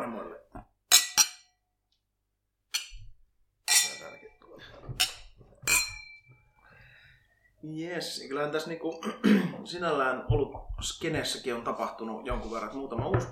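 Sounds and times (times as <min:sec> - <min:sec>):
drinking glasses clinking in a toast: 0:03.7 - 0:04.2, 0:05.0 - 0:06.3
speech: 0:07.6 - 0:13.3.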